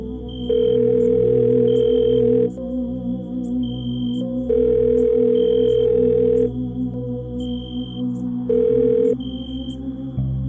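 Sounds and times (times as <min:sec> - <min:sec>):
faint hum: 0:00.0 - 0:10.4
cell phone ringback tone through the handset: 0:00.5 - 0:02.5, 0:04.5 - 0:06.4, 0:08.5 - 0:09.2.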